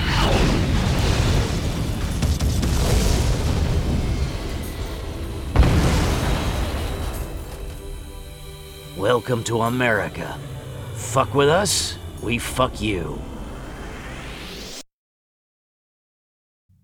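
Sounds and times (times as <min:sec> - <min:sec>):
heat-seeking missile fired from weapon pod under stub wing hitting target: 0:00.0 - 0:07.9
speech: 0:09.1 - 0:13.3.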